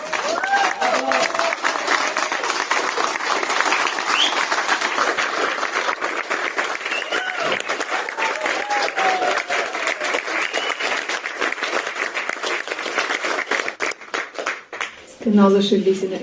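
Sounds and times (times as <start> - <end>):
scattered cheers and whoops: 0.0 - 2.4, 6.8 - 11.0
large concert audience applauding: 0.0 - 15.1
speech: 15.3 - 16.2.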